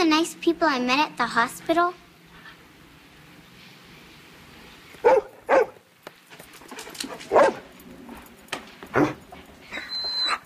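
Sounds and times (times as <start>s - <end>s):
speech: 0.2s - 2.0s
dog barking: 5.0s - 5.8s, 7.2s - 7.7s.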